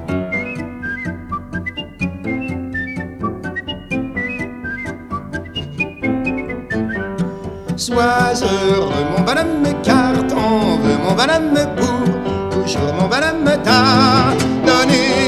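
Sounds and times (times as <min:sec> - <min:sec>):
bird-like whistled melody: 0:00.1 - 0:08.3
speech: 0:07.8 - 0:10.0, 0:11.1 - 0:15.2.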